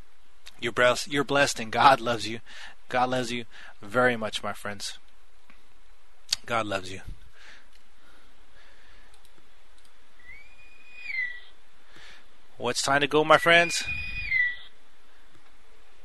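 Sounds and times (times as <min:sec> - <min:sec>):
hiss: 0:00.0 - 0:16.0
speech: 0:00.6 - 0:05.0, 0:06.5 - 0:07.2, 0:12.6 - 0:14.1
navy whistle: 0:10.2 - 0:11.5, 0:13.3 - 0:14.7.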